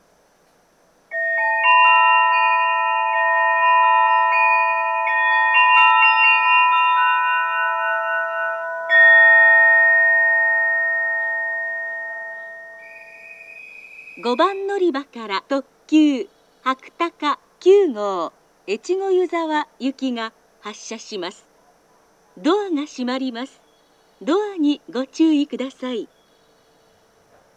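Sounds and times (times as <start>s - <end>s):
station announcement for limited express train to Echigo-Yuzawa: 1.1s - 13.5s, 14.2s - 21.4s, 22.4s - 23.6s, 24.2s - 26.1s
departure melody at Takaoka Station platform 5: 1.1s - 15.2s.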